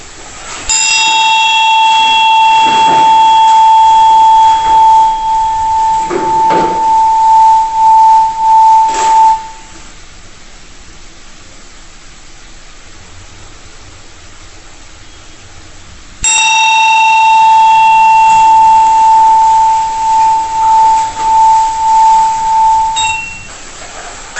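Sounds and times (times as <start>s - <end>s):
small bell struck and ringing: 0.7s - 9.6s, 16.2s - 23.5s.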